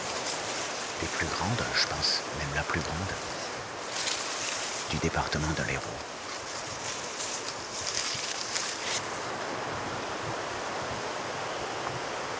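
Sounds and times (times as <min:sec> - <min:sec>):
wind rustling across open water by a lake: 0:00.0 - 0:12.3
speech: 0:01.0 - 0:03.4, 0:04.9 - 0:06.1.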